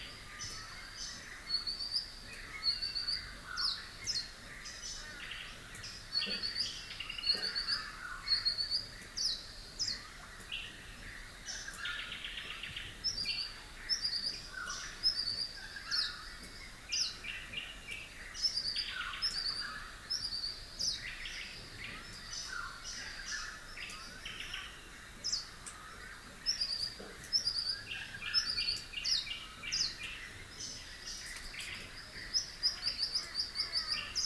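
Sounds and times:
rural dawn chorus of birds: 0.0s - 34.2s.

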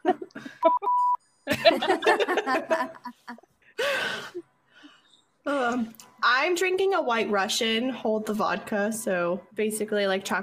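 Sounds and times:
laughter: 0.0s - 0.9s, 1.5s - 3.5s
electronic beeps from a sound button: 0.7s - 1.3s
speech: 1.7s - 3.2s, 5.5s - 10.4s.

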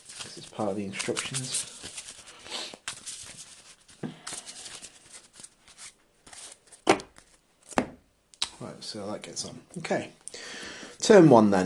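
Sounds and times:
card deck being shuffled during the setup of a card game: 0.0s - 7.8s
card deck slapping: 0.1s - 8.6s
speech: 0.6s - 1.8s, 8.9s - 10.2s, 11.1s - 11.6s.

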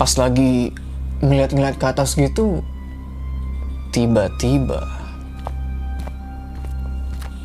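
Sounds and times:
speech: 0.0s - 2.7s, 3.9s - 5.0s
steady low droning hum: 0.0s - 7.4s
soft irregular footsteps crunching: 5.2s - 7.4s.

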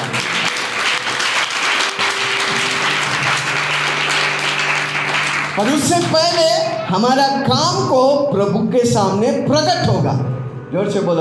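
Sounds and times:
large crowd applause: 0.0s - 7.0s
speech: 5.6s - 11.2s.

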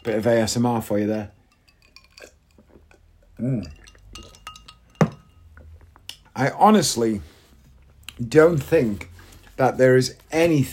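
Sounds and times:
speech: 0.0s - 1.4s, 3.4s - 4.3s, 6.4s - 7.3s, 8.2s - 10.7s
ice cubes clinking against a pint glass: 1.2s - 2.6s, 3.6s - 5.6s.

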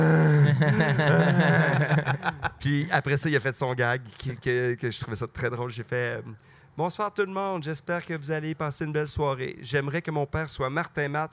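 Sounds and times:
voice imitating heavy groaning breathing: 0.0s - 0.6s
laughter: 0.3s - 2.8s
speech: 0.7s - 11.3s.

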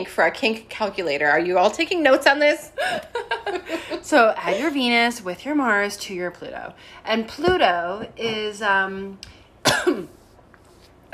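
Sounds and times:
speech: 0.0s - 10.2s
person coughing: 9.6s - 10.2s.

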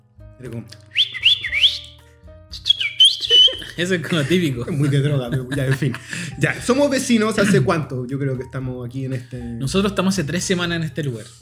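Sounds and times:
speech: 0.4s - 1.0s, 3.8s - 11.4s
person whistling a signal to call friends: 0.9s - 3.8s
laughter: 3.2s - 6.4s.

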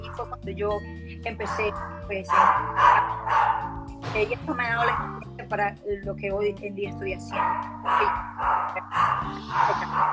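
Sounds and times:
speech: 0.2s - 3.4s, 4.0s - 10.1s
small dog barking: 1.5s - 3.8s, 7.3s - 10.1s.

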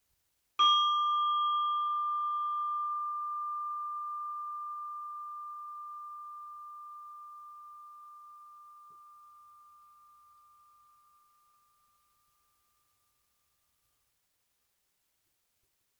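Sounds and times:
single meditation bell struck with a clear pure tone: 0.6s - 11.9s.

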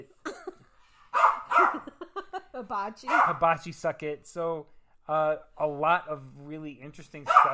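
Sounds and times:
small dog barking: 1.2s - 1.8s, 3.1s - 3.4s, 7.3s - 7.5s
speech: 2.6s - 7.5s.

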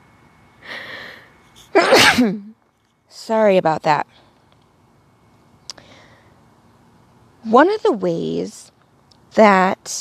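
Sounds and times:
person sneezing: 1.7s - 2.5s
speech: 2.2s - 4.2s, 7.4s - 8.7s, 9.3s - 9.9s.

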